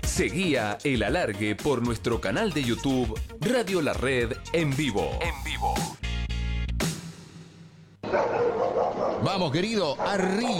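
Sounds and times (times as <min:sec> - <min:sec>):
speech: 0:00.1 - 0:05.9, 0:09.2 - 0:10.5
dogs barking: 0:08.0 - 0:10.5.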